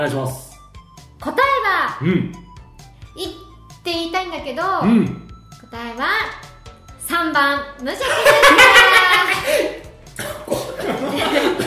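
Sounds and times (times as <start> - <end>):
speech: 0.0 - 0.5, 1.2 - 2.5, 3.2 - 6.4, 7.1 - 11.6
person chuckling and laughing breathily: 8.1 - 11.6
person coughing from choking on laughter: 10.2 - 11.6.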